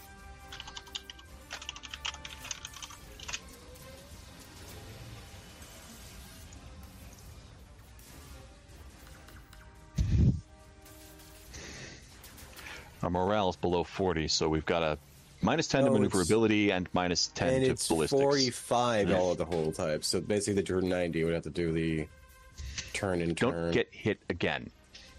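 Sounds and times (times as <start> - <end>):
keyboard typing while notes are taken during a tabletop game session: 0.4 - 3.6
speech: 13.1 - 22.2, 23.0 - 24.8.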